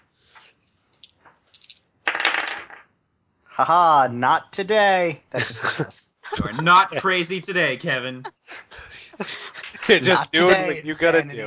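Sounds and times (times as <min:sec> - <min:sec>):
dice rolling and clattering: 0:01.0 - 0:02.9
speech: 0:03.6 - 0:11.4
laughter: 0:05.4 - 0:11.4.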